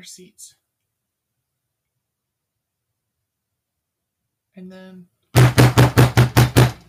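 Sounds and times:
speech: 0.0s - 0.6s, 4.6s - 5.2s
fist pounding hard on a door: 5.4s - 6.8s.

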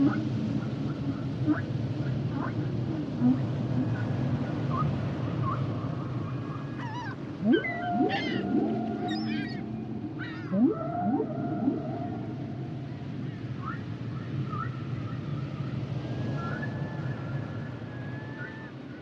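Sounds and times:
constant low hiss: 0.0s - 19.0s
humpback whale song with chirpy sweeps whoops and moaning tones: 2.4s - 19.0s.

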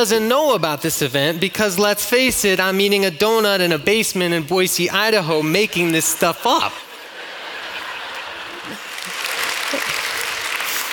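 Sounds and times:
speech: 0.0s - 6.8s
laughter: 5.4s - 10.9s
audience clapping: 7.5s - 10.9s.

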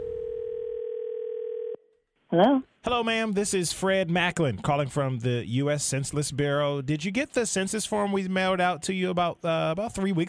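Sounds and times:
telephone dial tone: 0.0s - 1.8s
speech: 2.3s - 10.2s.

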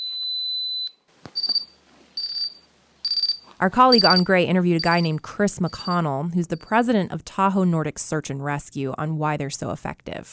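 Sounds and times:
avalanche transceiver beacon beeping when activated: 0.0s - 6.8s
speech: 3.6s - 10.3s.

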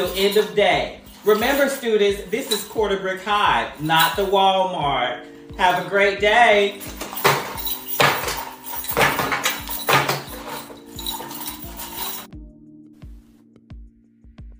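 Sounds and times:
bunch of keys jingling: 0.0s - 3.0s, 3.7s - 4.3s, 5.3s - 12.3s
speech: 0.0s - 7.0s.

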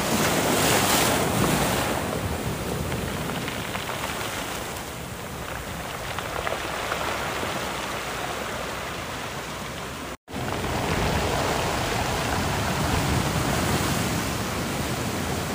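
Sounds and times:
waves washing onto a Hawaiian beach and filtering through rocks: 0.0s - 15.5s
wind buffeting the microphone: 0.0s - 15.5s.

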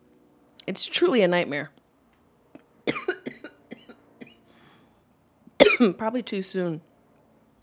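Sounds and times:
speech: 0.7s - 1.8s, 5.8s - 6.9s
harsh barking coughs: 2.9s - 4.4s, 5.6s - 5.9s.

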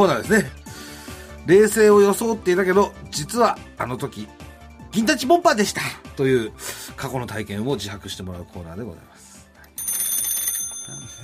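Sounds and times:
speech: 0.0s - 0.6s, 1.4s - 9.2s
telephone ringing with a bright trilling ring: 9.7s - 11.2s.

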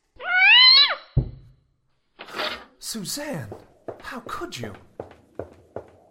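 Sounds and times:
cat yowling: 0.2s - 1.1s
speech: 2.8s - 5.0s.

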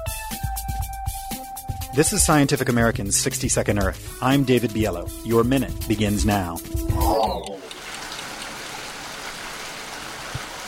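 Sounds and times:
speech: 2.0s - 7.6s
steady rain: 7.6s - 10.6s.

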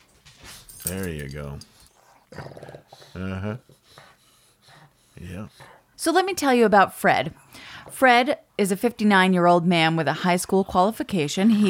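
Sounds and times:
speech: 0.9s - 4.1s, 5.2s - 11.6s
dog growling: 1.9s - 3.8s.

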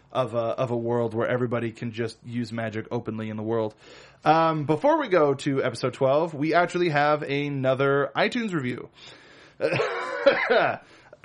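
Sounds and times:
speech: 0.1s - 11.2s
person coughing: 9.6s - 11.2s.

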